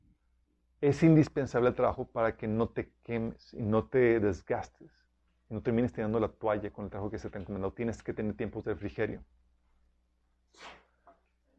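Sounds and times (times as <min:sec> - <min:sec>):
speech: 0:00.8 - 0:09.4, 0:10.5 - 0:10.8
person sneezing: 0:10.6 - 0:10.9
short exhale or sniff: 0:10.6 - 0:10.9.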